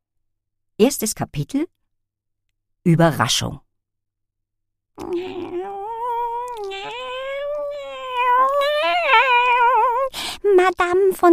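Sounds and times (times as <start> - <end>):
speech: 0.8 - 1.8, 2.8 - 3.6, 5.0 - 5.4, 10.6 - 11.3
cat meowing: 5.0 - 10.1.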